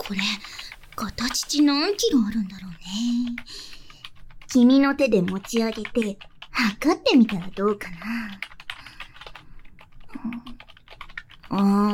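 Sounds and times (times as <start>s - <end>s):
typing on a computer keyboard: 0.0s - 11.9s
speech: 0.1s - 3.8s, 4.5s - 8.5s, 10.2s - 10.6s, 11.5s - 11.9s.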